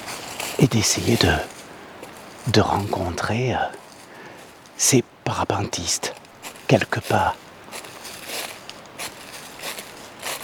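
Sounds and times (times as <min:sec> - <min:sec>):
footsteps crunching through dry dead leaves in a forest: 0:00.0 - 0:04.8, 0:06.1 - 0:10.4
speech: 0:00.6 - 0:01.6, 0:02.4 - 0:03.8, 0:04.8 - 0:07.4.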